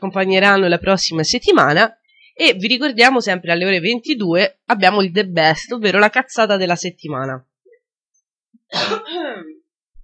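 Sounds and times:
speech: 0:00.0 - 0:07.5, 0:08.7 - 0:09.5
rasping throat-clearing cough of a radio presenter: 0:08.7 - 0:09.6.

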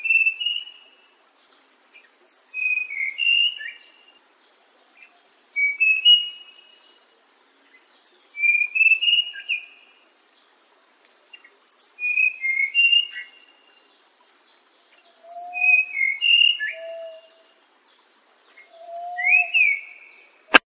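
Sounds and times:
songbird singing chirps and whistled notes: 0:00.0 - 0:00.8, 0:02.3 - 0:04.0, 0:05.0 - 0:06.7, 0:08.0 - 0:09.8, 0:11.4 - 0:13.6, 0:15.0 - 0:17.4, 0:18.6 - 0:20.2.

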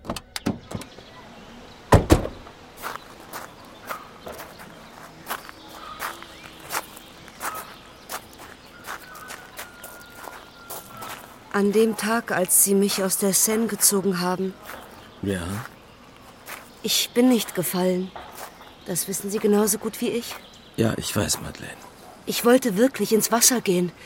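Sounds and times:
footsteps of people walking outdoors near a tree-lined avenue: 0:02.8 - 0:20.6
speech: 0:11.6 - 0:15.7, 0:16.8 - 0:18.2, 0:18.9 - 0:24.0.

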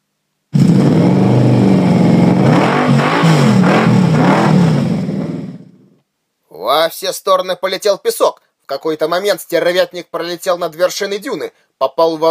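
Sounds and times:
motorbike engine starting and speeding across the desert: 0:00.5 - 0:06.0
speech: 0:06.8 - 0:12.2.

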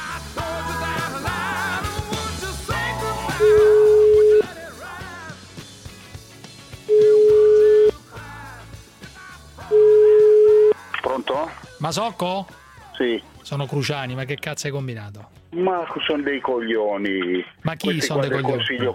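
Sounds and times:
music: 0:00.0 - 0:18.9
ringback tone of an outgoing telephone call: 0:03.4 - 0:04.4, 0:06.9 - 0:07.9, 0:09.7 - 0:10.8
speech: 0:11.9 - 0:18.9.

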